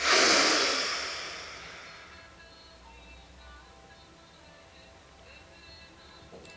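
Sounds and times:
deep breath during a stretching exercise: 0.0s - 2.2s.

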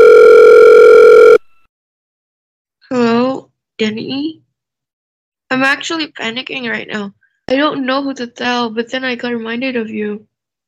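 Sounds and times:
phone ringing with an electronic tone: 0.0s - 1.6s
speech: 3.8s - 4.4s, 5.5s - 10.3s.

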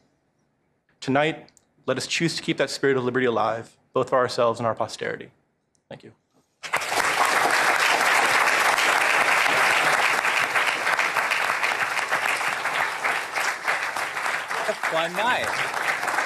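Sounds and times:
speech: 1.0s - 6.2s, 14.7s - 15.9s
large audience applauding: 6.6s - 16.2s.

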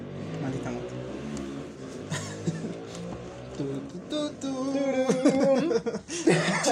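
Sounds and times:
loud motorcycle engine roaring past: 0.0s - 5.9s
laughter: 2.0s - 2.9s, 4.8s - 6.6s.

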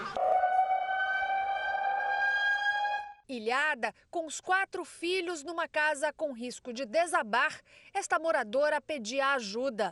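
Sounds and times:
civil defense warning siren wailing: 0.0s - 3.2s
speech: 3.3s - 9.9s.

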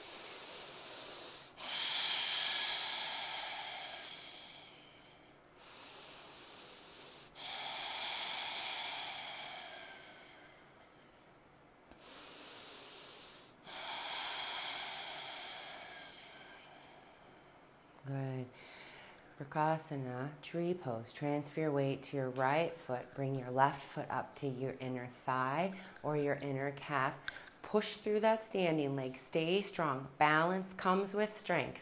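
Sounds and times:
slow deep breathing during a yoga standing pose: 0.0s - 19.4s
speech: 19.4s - 31.8s.

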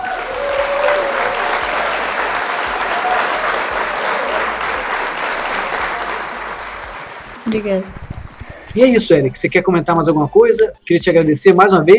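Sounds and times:
audience applause: 0.0s - 7.5s
speech: 7.5s - 8.0s, 8.7s - 11.9s.

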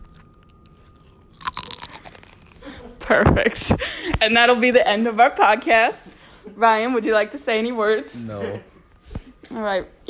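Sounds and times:
loud crunching of potato chips being chewed: 0.0s - 2.7s
speech: 3.1s - 8.7s, 9.5s - 10.0s.

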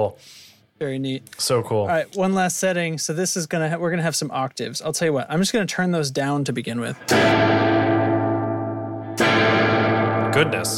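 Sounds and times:
speech: 0.0s - 7.8s, 10.4s - 10.7s
electric guitar played through a pedal with high reverb: 7.0s - 10.7s.

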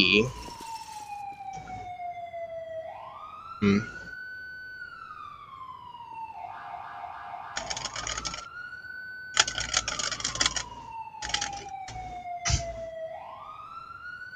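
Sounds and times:
speech: 0.0s - 0.4s, 3.6s - 4.0s
siren wailing: 0.0s - 14.3s
rapid keyboard typing: 7.6s - 8.5s, 9.4s - 12.8s.

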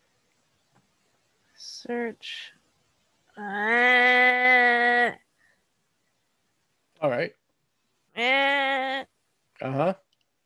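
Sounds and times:
speech: 1.8s - 2.6s, 3.4s - 5.2s, 7.0s - 7.4s
voice bleating like a goat: 3.4s - 5.2s, 8.2s - 9.1s.

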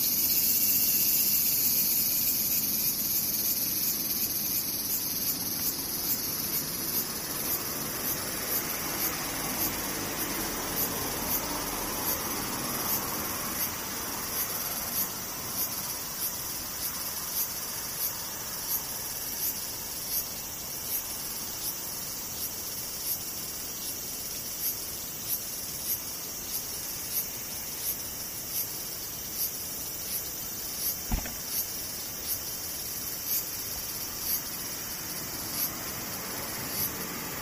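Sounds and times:
cicadas droning: 0.0s - 37.4s
sharp click: 31.1s - 31.6s.

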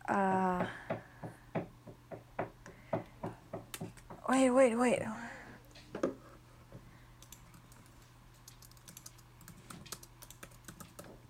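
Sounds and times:
speech: 0.1s - 0.8s, 4.3s - 5.2s
laptop keys being tapped: 7.2s - 11.2s.

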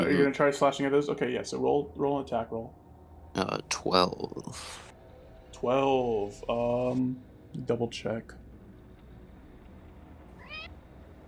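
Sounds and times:
steady low hum: 0.0s - 11.2s
speech: 0.1s - 2.8s, 3.4s - 4.9s, 5.6s - 8.4s
cat meowing: 10.4s - 10.7s.

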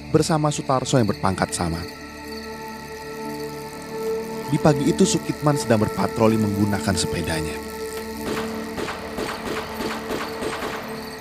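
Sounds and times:
speech: 0.1s - 2.1s, 4.5s - 7.7s
rapid gunshots in Kebayoran Baru, Jakarta: 8.2s - 11.0s.

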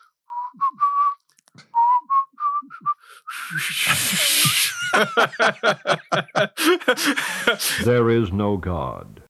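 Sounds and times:
person whistling clear steady notes: 0.2s - 4.7s
speech: 3.5s - 9.2s
loud breathy laughter and snickering: 3.6s - 7.8s.

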